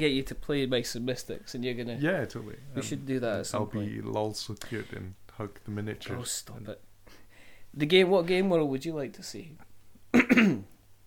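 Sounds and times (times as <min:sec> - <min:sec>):
speech: 0:00.0 - 0:06.9, 0:07.7 - 0:10.7
person coughing: 0:10.1 - 0:10.7.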